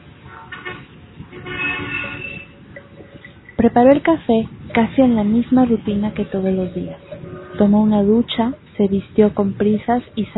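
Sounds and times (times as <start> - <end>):
car horn honking in a street: 0.3 - 3.4, 6.1 - 7.8
low rumble: 2.2 - 10.3
speech: 3.6 - 7.0, 7.6 - 10.3.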